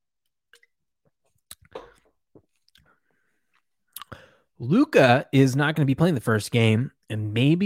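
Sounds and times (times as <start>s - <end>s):
person sipping a drink: 1.5s - 4.2s
speech: 4.6s - 7.6s.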